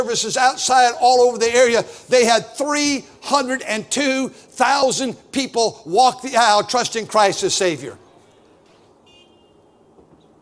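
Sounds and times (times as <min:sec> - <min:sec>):
speech: 0:00.0 - 0:08.0
outdoor noise: 0:00.0 - 0:10.4
car horn honking: 0:09.0 - 0:10.0.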